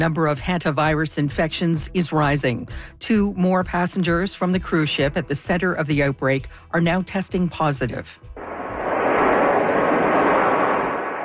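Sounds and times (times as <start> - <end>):
speech: 0.0 - 8.4
airplane engine roar while landing: 8.4 - 11.2.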